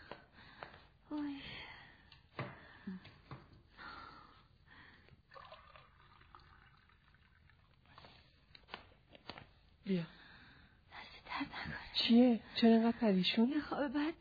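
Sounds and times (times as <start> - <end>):
cold water from the fridge poured into a glass: 5.3 - 8.0
speech: 9.9 - 10.2, 12.0 - 14.1.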